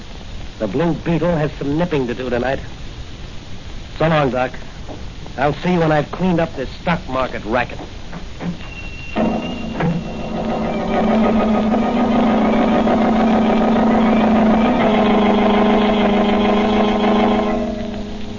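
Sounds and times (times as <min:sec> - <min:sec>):
speech: 0:00.6 - 0:02.8, 0:04.0 - 0:08.6, 0:10.9 - 0:12.3
car engine running: 0:09.3 - 0:18.3.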